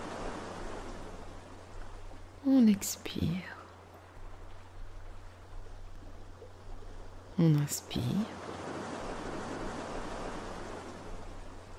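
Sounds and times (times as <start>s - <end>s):
faint even wash of ocean waves: 0.0s - 11.7s
speech: 2.4s - 3.6s, 7.4s - 8.5s.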